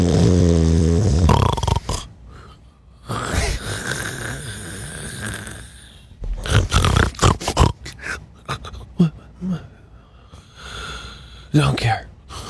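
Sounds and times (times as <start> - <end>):
man snoring: 0.0 - 2.1, 3.0 - 8.0.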